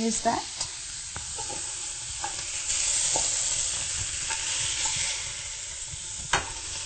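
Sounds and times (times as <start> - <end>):
tofu sizzling in a spiced pan: 0.0 - 6.8.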